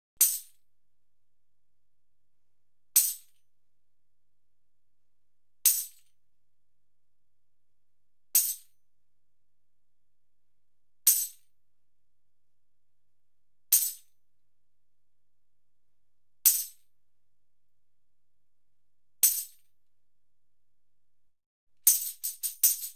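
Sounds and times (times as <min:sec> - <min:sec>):
instrumental tambourine: 0:00.2 - 0:00.6, 0:05.7 - 0:06.1, 0:11.1 - 0:11.5, 0:13.7 - 0:14.2, 0:16.5 - 0:16.9, 0:19.2 - 0:19.7, 0:21.9 - 0:22.9.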